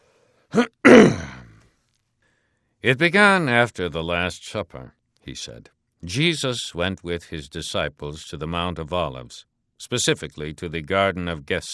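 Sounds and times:
man clearing his throat: 0.5 - 1.6
speech: 2.8 - 11.7.

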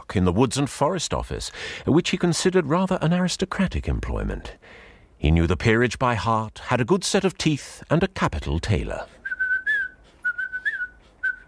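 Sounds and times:
speech: 0.1 - 9.2
person whistling a tune: 9.2 - 11.4.

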